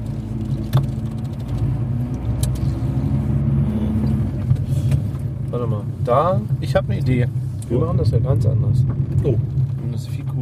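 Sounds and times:
car engine droning with a low even rumble: 0.0s - 10.3s
speech: 6.1s - 10.3s.

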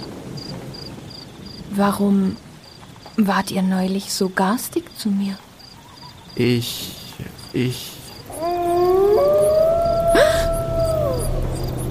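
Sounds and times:
faint hiss: 0.0s - 11.8s
speech: 1.7s - 2.5s, 3.2s - 5.5s, 6.4s - 8.6s
several wolves howling together: 8.2s - 11.8s.

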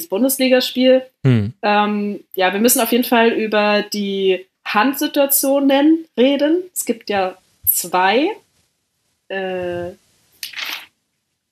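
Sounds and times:
speech: 0.0s - 8.4s, 9.3s - 10.0s
paper notes being flipped through: 9.6s - 10.9s.

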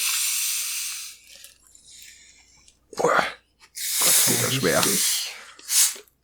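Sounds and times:
soda bottle twisted open with gas hissing: 0.0s - 1.3s, 3.8s - 6.1s
speech: 4.5s - 5.1s.

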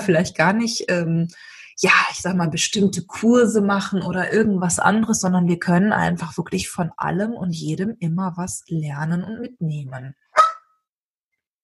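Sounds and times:
speech: 0.0s - 10.2s
dog barking: 10.3s - 10.7s.

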